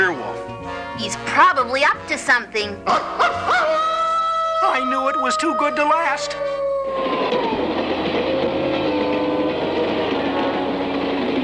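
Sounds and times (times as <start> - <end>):
speech: 0.1 - 3.9, 4.6 - 7.6
rail car rumbling along tracks: 7.0 - 11.4.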